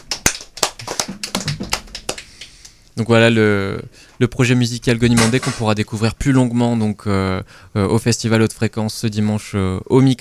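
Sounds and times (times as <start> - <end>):
audience applause after a musical performance: 0.0 - 2.8
speech: 3.0 - 10.1.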